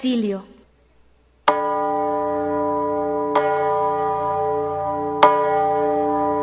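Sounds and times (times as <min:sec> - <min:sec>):
speech: 0:00.0 - 0:00.6
church bell tolling: 0:01.5 - 0:06.4.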